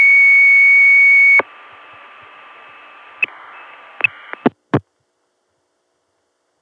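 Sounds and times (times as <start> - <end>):
high-pitched modem tone: 0.0 - 1.5.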